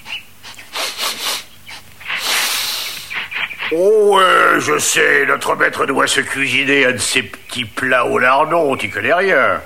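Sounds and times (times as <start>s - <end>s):
dog sniffing rapidly with breathy snuffles: 0.0s - 3.8s
speech: 3.7s - 9.6s.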